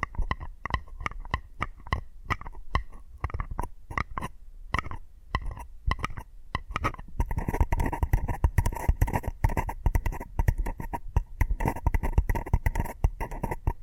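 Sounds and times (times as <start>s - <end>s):
tapping on hard objects: 0.0s - 13.8s.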